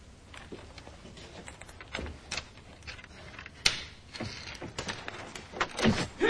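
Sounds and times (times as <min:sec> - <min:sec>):
door held by a chain forced open by intruders: 0:01.6 - 0:06.2.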